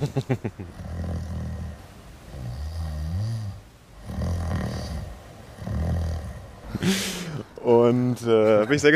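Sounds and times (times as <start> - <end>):
laughter: 0.0 - 0.7
speech: 0.0 - 0.8, 7.9 - 8.9
loud rasping snores: 0.7 - 7.4.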